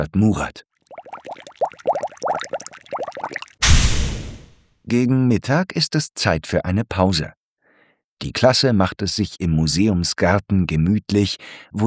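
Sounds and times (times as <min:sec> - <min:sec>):
speech: 0:00.0 - 0:00.7, 0:04.9 - 0:07.4, 0:08.2 - 0:11.8
bubbly plopping and gurgling: 0:00.9 - 0:04.4
baking soda and vinegar fizzing eruption in a volcano model: 0:01.0 - 0:04.5.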